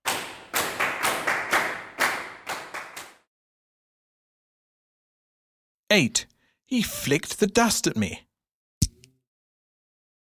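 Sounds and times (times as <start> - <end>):
loud sharp hand claps by several people: 0.0 - 3.3
speech: 5.9 - 8.3.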